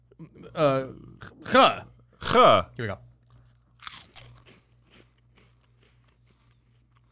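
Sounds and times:
low steady hum: 0.0 - 7.1
speech: 0.2 - 3.0
crunching a puffed cheese snack: 3.3 - 7.1.

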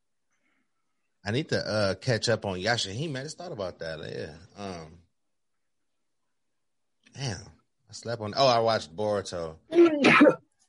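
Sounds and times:
speech: 1.2 - 5.0, 7.1 - 10.4
person sneezing: 9.8 - 10.4.

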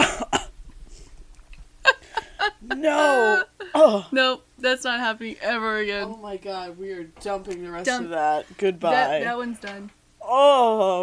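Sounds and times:
person coughing after tasting a bitter drink: 0.0 - 0.6
laughter: 1.8 - 3.8
speech: 2.8 - 11.0.

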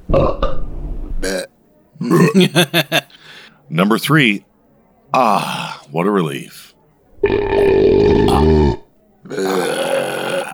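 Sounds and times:
loud belch while rating beers: 0.1 - 0.6, 1.2 - 2.6, 7.2 - 10.5
speech: 2.0 - 3.0, 3.7 - 4.5, 5.1 - 6.7
laughter: 2.0 - 3.5.

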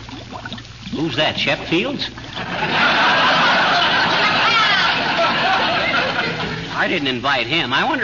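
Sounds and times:
water at a rolling boil in a wash boiler: 0.0 - 8.0
speech: 0.9 - 2.9, 6.8 - 8.0
laughter: 2.4 - 7.0.

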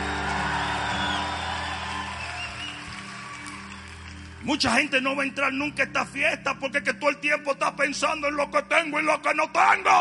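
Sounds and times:
audience shouting a cry of glory, whooping and cheering: 0.0 - 4.4
speech: 4.4 - 9.9.

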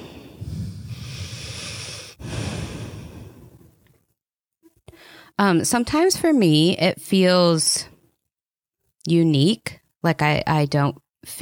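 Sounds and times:
deep breath in a calm guided moment: 0.0 - 4.0, 4.9 - 5.4
speech: 5.4 - 7.9, 9.0 - 11.4.

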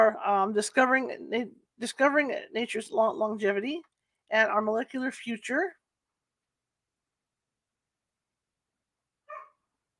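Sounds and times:
speech: 0.0 - 5.8
dog barking: 9.2 - 9.7.

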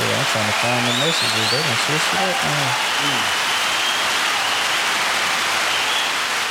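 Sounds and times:
murmur of voice: 0.0 - 3.3
crowd applauding: 0.0 - 6.4
speech: 0.4 - 3.5.

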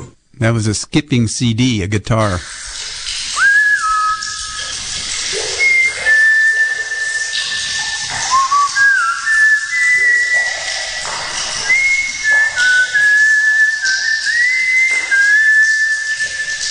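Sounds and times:
speech: 0.5 - 2.6
spring water flowing into a spring water tank: 2.1 - 16.6
person whistling a tune inside a spring water tank: 3.4 - 4.7, 5.6 - 10.6, 11.6 - 16.6.

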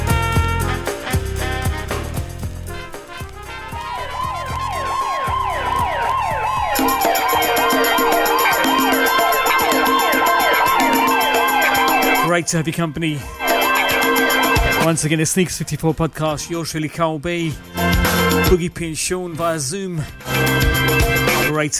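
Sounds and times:
busy street noise: 0.0 - 15.8
emergency vehicle siren wailing: 3.5 - 12.3, 13.2 - 14.9
speech: 12.4 - 13.4, 14.2 - 21.7.

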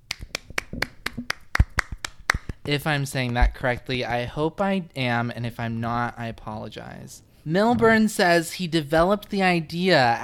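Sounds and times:
single person clapping: 0.1 - 3.5
speech: 2.7 - 10.2.

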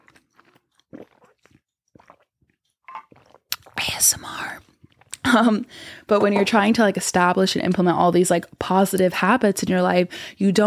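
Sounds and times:
person sipping water with slurps and swallows: 0.0 - 6.6
speech: 4.0 - 10.6.

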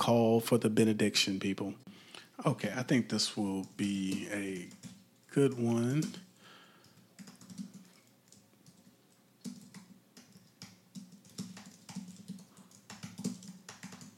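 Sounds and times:
speech: 0.1 - 6.3
rapid irregular typing on a computer keyboard: 3.6 - 14.1.

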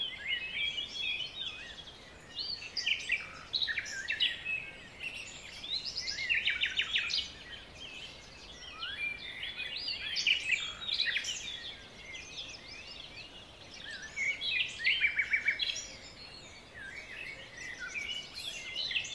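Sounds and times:
soft steady hiss: 0.0 - 19.1
songbirds chattering with bright quick notes and trills: 0.0 - 19.1.

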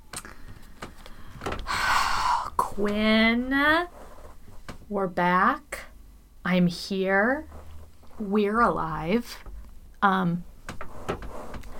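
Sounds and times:
chair creaking: 0.2 - 4.9, 7.4 - 8.6, 10.6 - 11.7
speech: 2.8 - 4.0, 4.9 - 5.8, 6.5 - 7.6, 8.2 - 10.5.

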